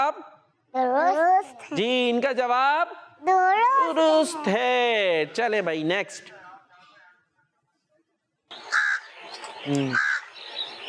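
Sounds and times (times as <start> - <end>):
speech: 0.1 - 6.4, 9.6 - 10.1
crow cawing: 8.6 - 9.2, 9.9 - 10.3.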